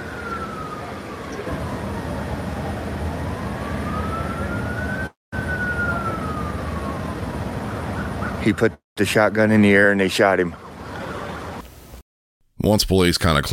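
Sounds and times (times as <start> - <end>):
ambulance siren wailing: 0.0 - 8.6
steady outdoor street noise: 0.0 - 12.0
speech: 8.4 - 10.6, 12.6 - 13.5.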